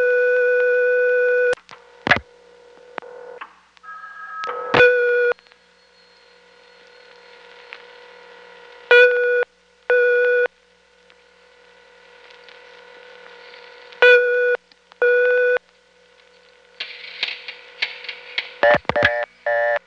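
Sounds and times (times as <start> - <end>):
steady electronic telephone test line tones: 0.0 - 1.6, 3.8 - 10.6, 12.4 - 15.6, 17.5 - 19.8.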